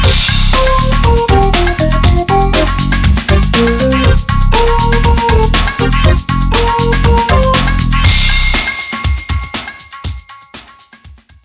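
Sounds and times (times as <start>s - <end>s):
swing dance music: 0.0s - 8.7s.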